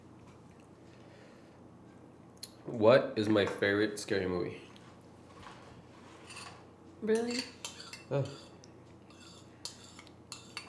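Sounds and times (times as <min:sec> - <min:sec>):
speech: 0:02.6 - 0:04.7, 0:07.0 - 0:08.4
spoon scraping against a plate of ice cream: 0:06.0 - 0:10.6.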